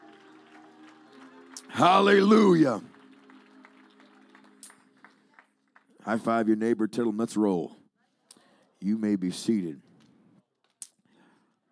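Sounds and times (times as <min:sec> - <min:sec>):
church audience clapping: 0:00.0 - 0:06.4
speech: 0:01.7 - 0:02.9, 0:06.1 - 0:07.8, 0:08.8 - 0:09.9.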